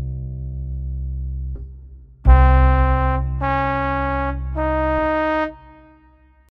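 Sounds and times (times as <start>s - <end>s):
C Db Eb C drone for trichord ear training: 2.3s - 6.3s.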